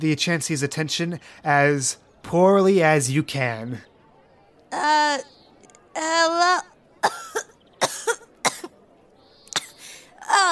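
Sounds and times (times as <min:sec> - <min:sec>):
speech: 0:00.0 - 0:03.9, 0:04.7 - 0:05.4, 0:06.0 - 0:06.6
person coughing harshly with a raspy wheezing cough: 0:07.0 - 0:08.7, 0:09.6 - 0:09.8.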